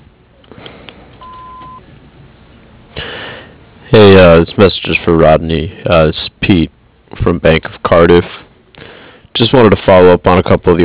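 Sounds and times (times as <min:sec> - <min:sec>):
business voicemail answering machine beep: 0:01.2 - 0:01.8
speech: 0:03.9 - 0:08.4, 0:09.4 - 0:10.8.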